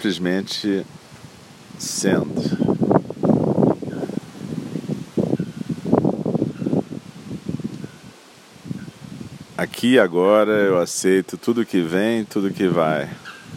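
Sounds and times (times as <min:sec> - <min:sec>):
speech: 0:00.0 - 0:01.0, 0:01.8 - 0:02.6, 0:09.8 - 0:13.4
wind gusting through leafy forest trees: 0:00.0 - 0:13.5.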